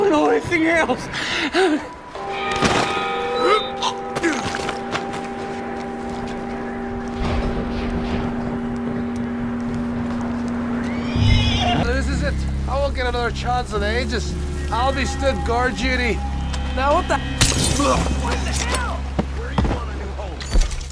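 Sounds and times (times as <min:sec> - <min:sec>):
speech: 0:00.4 - 0:02.3, 0:12.9 - 0:18.9
steady low drone: 0:00.8 - 0:20.4
horse whinnying: 0:10.8 - 0:11.9.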